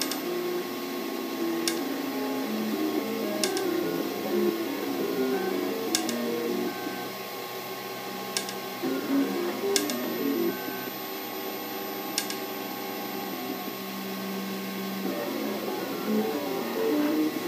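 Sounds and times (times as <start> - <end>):
3D printer motors whirring and stepping: 0.0 - 17.4
sharp clicks: 1.6 - 1.8, 3.4 - 3.8, 5.9 - 6.8, 8.4 - 8.6, 9.7 - 10.0, 12.2 - 12.4.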